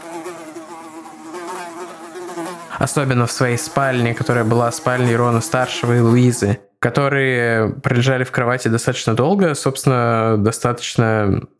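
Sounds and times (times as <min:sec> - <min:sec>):
swarm of many flies buzzing: 0:00.0 - 0:06.6
speech: 0:02.8 - 0:11.5.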